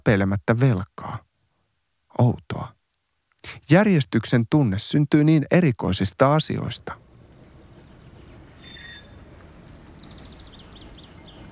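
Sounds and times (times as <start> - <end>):
speech: 0.0 - 1.2, 2.2 - 2.8, 3.4 - 7.0
tram rumbling and rattling along a street: 6.8 - 11.5
faint bird chirps: 7.7 - 11.5
tram metallic wheel squeal: 8.5 - 10.0.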